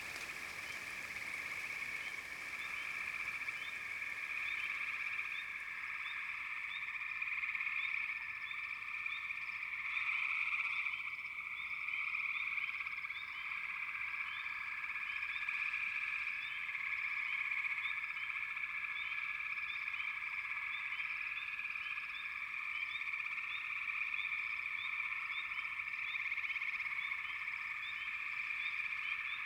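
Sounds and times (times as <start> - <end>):
frog chorus: 0.0 - 29.4.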